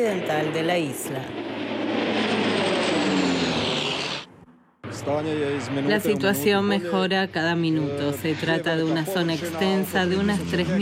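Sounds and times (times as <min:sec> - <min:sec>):
speech: 0:00.0 - 0:01.7, 0:05.0 - 0:10.8
Canadair firefighting water-bomber plane fighting a wildfire around Milna roaring overhead: 0:00.0 - 0:10.8.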